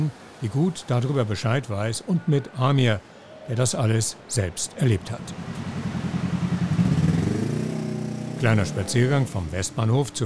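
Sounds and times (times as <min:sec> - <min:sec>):
speech: 0:00.0 - 0:05.7, 0:08.4 - 0:10.2
steady traffic rumble: 0:00.0 - 0:10.2
vehicle engine accelerating along a street: 0:05.3 - 0:10.1.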